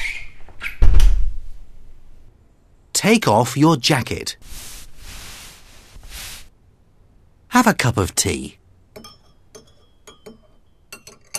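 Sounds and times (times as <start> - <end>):
heavy door thud as it swings shut: 0.8 - 1.3
speech: 3.0 - 4.7, 7.5 - 8.6.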